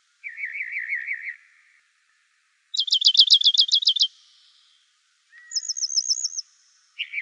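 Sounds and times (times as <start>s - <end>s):
rock wren singing varied trilled phrases: 0.2s - 1.5s, 2.7s - 4.6s, 5.4s - 7.2s.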